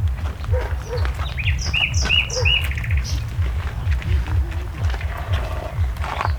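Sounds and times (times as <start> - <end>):
Common nightingale song at a farmstead in Arluno, Milan, Italy: 0.3 - 4.5, 5.2 - 6.3.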